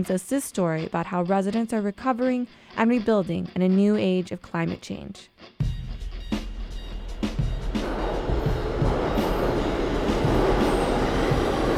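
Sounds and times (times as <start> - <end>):
speech: 0.0 - 5.7
train rumbling along the rails heard from inside the car: 6.8 - 11.7.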